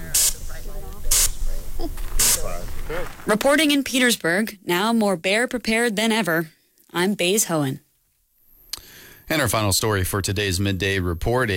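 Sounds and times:
aerosol bear spray hissing blasts: 0:00.0 - 0:03.0
speech: 0:01.8 - 0:02.1, 0:02.9 - 0:07.8, 0:09.3 - 0:11.5.

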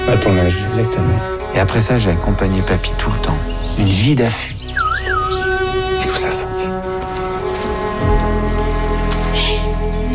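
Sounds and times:
speech: 0:00.1 - 0:04.8
birds chirping and whistling in a forest: 0:02.5 - 0:10.1.

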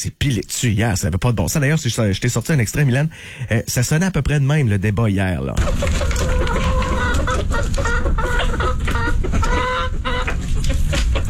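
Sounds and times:
speech: 0:00.0 - 0:06.7, 0:07.4 - 0:08.6
chickens clucking in a henhouse: 0:02.7 - 0:03.1, 0:05.6 - 0:11.2.

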